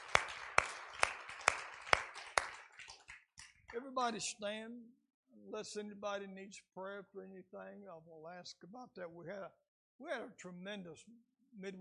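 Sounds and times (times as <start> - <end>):
group clapping hands in unison in a large room: 0.0 - 4.1
speech: 3.8 - 11.7.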